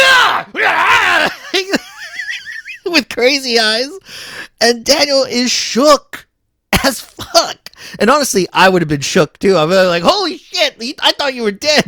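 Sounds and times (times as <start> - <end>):
man imitating guttural growling and yelling: 0.0 - 1.5
speech: 3.2 - 6.2, 6.8 - 11.8.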